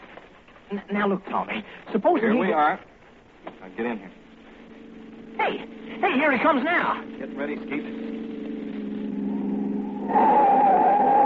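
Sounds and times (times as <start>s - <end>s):
car engine humming: 0.0s - 11.2s
speech: 0.7s - 2.9s, 3.6s - 4.2s, 5.4s - 8.0s, 10.1s - 10.4s
tires skidding as the car brakes hard: 3.7s - 11.2s.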